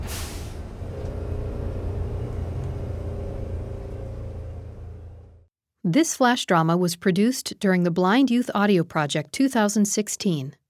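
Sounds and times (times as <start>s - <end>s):
bus engine idling with deep drone: 0.0s - 5.5s
speech: 5.8s - 10.6s.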